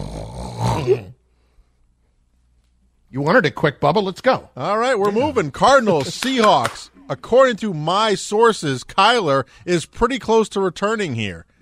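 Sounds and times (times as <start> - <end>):
person imitating raspy nasal snoring with their voice: 0.0 - 1.2
speech: 0.8 - 1.2, 3.1 - 11.5.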